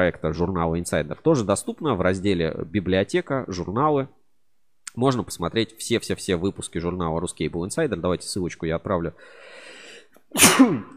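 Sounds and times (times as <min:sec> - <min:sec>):
speech: 0:00.0 - 0:04.2, 0:05.0 - 0:10.9
quiet inhale: 0:09.2 - 0:10.3
person sneezing: 0:10.3 - 0:10.9.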